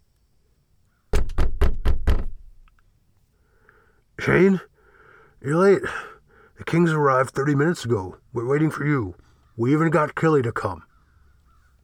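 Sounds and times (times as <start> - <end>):
loud heavy knocking on a door: 1.1 - 2.6
speech: 4.2 - 4.7, 5.4 - 10.9.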